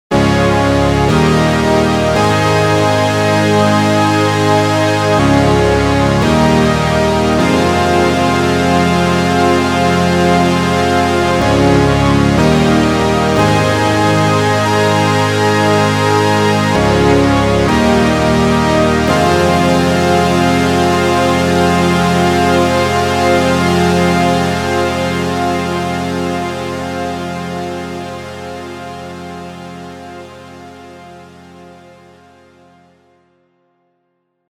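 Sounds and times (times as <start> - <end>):
octave string machine synth: 0.1 - 27.0.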